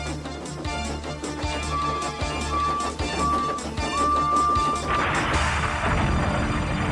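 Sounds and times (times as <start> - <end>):
rumbling mechanical clatter with thuds: 0.0 - 6.9
whistle-like tone: 1.5 - 5.4
heavy smashing crash with splintering through wooden wagons: 4.8 - 6.9.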